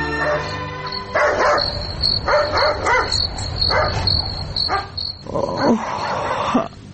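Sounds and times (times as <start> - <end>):
dog barking at night: 0.1 - 6.5.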